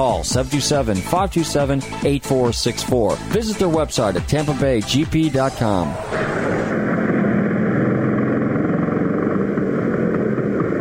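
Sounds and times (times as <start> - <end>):
speech: 0.0 - 6.2
Vespa motor scooter engine running: 6.7 - 10.7.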